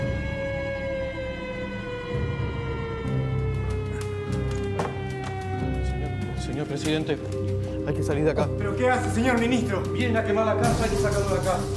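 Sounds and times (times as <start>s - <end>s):
newspaper sirens wailing during a coup: 0.0s - 11.7s
speech: 6.6s - 11.7s.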